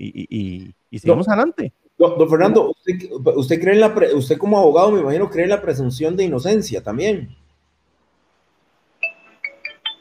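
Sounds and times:
speech: 0.0 - 7.4
phone ringtone: 9.0 - 9.9.

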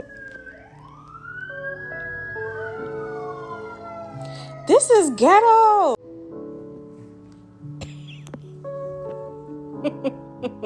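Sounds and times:
emergency vehicle sirens wailing: 0.0 - 6.0
speech: 4.7 - 6.0.

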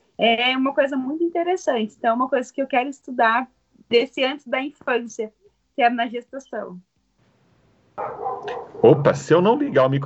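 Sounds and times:
speech: 0.2 - 6.9, 8.0 - 10.0
neighbor's dog barking: 8.0 - 9.2.

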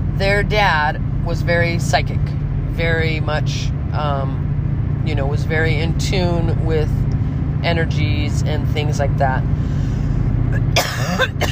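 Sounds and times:
speech: 0.2 - 4.4, 5.0 - 9.8, 10.5 - 11.5
loud harsh coughs: 10.6 - 11.5.

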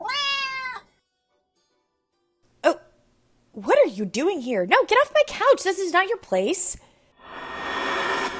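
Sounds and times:
orange tabby cat meowing on a couch in an apartment: 0.0 - 0.9
speech: 3.6 - 6.9.

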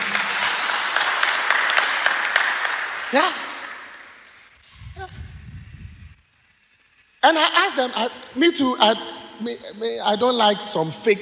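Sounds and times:
crowd applauding: 0.0 - 4.4
speech: 3.1 - 3.4, 7.3 - 11.2.

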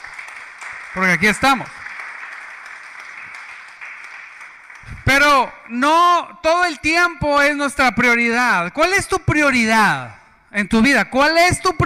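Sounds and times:
steady audience applause: 0.0 - 5.8
speech: 1.0 - 1.8, 5.7 - 11.8.

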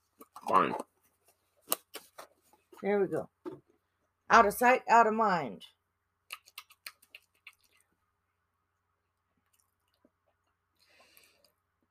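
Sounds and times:
speech: 0.5 - 0.9, 2.8 - 3.4, 4.3 - 5.8
wet chewing of food: 6.3 - 8.0, 9.4 - 11.6.

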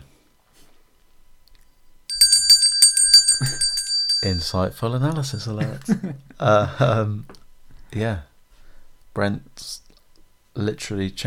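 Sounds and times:
bell ringing: 2.1 - 5.5
speech: 4.2 - 8.3, 9.2 - 9.8, 10.6 - 11.2.

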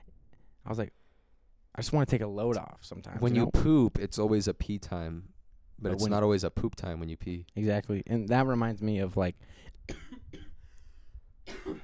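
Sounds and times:
speech: 0.7 - 1.0, 1.8 - 10.1
person coughing: 9.9 - 10.6, 11.5 - 11.8.

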